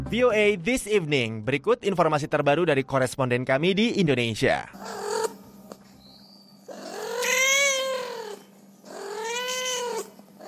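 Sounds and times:
speech: 0.1s - 5.1s
street cats meowing in Indonesia: 6.7s - 10.4s.

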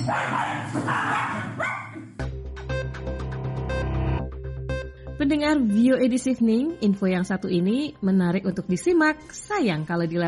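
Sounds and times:
speech: 0.0s - 1.0s, 5.2s - 10.2s
dogs barking in a bar: 0.0s - 2.2s
steady music: 2.2s - 10.2s.

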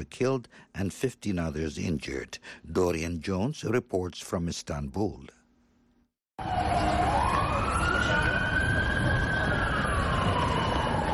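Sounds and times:
speech: 0.0s - 5.4s
dense rumbling street noise in Istanbul: 6.4s - 11.1s
police and ambulance sirens at a suicide bomb blast scene in Istanbul: 6.4s - 11.1s.

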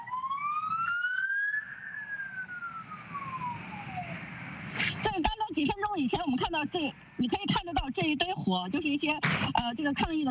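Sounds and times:
police car sirens wailing as vehicles advance during a street protest: 0.0s - 5.1s
low rumble of traffic: 0.0s - 10.2s
speech: 5.6s - 10.2s.

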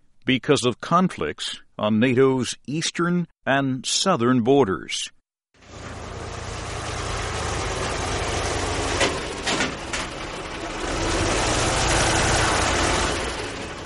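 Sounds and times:
speech: 0.3s - 5.2s
heavy engines of armored personnel carriers and tanks rumbling in Afghanistan: 5.6s - 13.8s.

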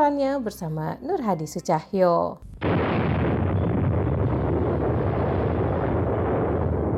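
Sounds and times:
speech: 0.0s - 3.0s
hydrogen bomb test explosion: 2.6s - 6.9s.

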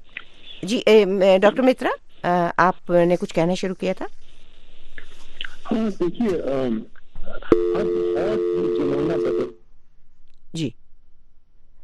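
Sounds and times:
speech: 0.6s - 4.2s, 5.7s - 9.6s, 10.5s - 10.8s
droning phone line tone during a phone call: 7.5s - 9.6s.

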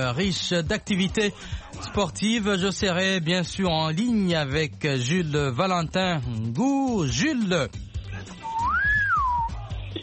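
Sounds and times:
speech: 0.0s - 8.4s
whistle blow: 8.4s - 9.6s.

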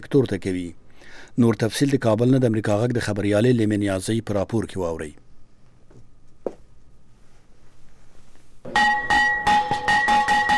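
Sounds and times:
speech: 0.1s - 5.2s
school bell clanging at a ceremony opening the new school year in Afghanistan: 8.7s - 10.5s.

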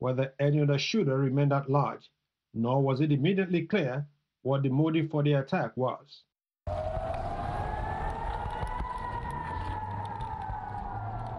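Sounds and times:
speech: 0.0s - 6.9s
air raid siren wailing over Israel during rocket fire from Gaza: 6.7s - 11.3s
low rumbling background: 6.7s - 11.3s.

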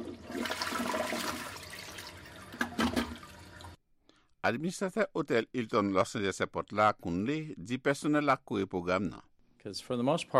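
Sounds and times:
toilet flushing: 0.0s - 3.8s
speech: 4.4s - 10.3s.

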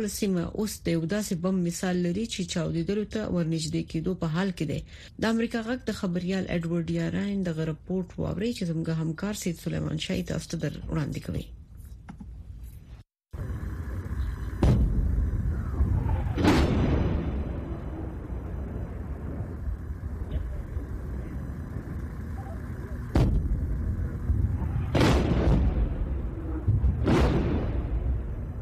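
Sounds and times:
speech: 0.0s - 12.2s
constant low rumble: 13.4s - 28.5s
loud sharp blasts of gunfire and artillery at the Lebanon-Israel border: 13.4s - 28.5s.

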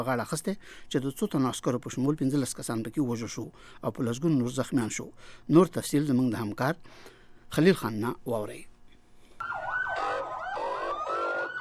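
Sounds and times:
speech: 0.0s - 8.7s
ambulance and fire engine sirens after a suicide bombing in Quetta: 9.4s - 11.5s.

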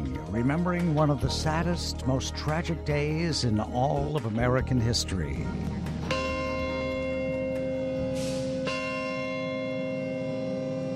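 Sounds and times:
speech: 0.3s - 5.8s
large memorial bell tolling: 5.8s - 10.9s.

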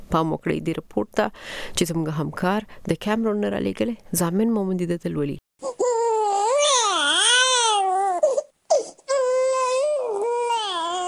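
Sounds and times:
speech: 0.1s - 5.8s
two-day-old newborn crying outside a private hospital in Douala, Cameroon: 5.6s - 11.0s.

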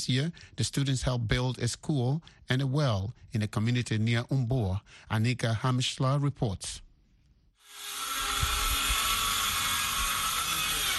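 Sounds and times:
speech: 0.0s - 6.8s
power drill running: 7.6s - 10.9s.

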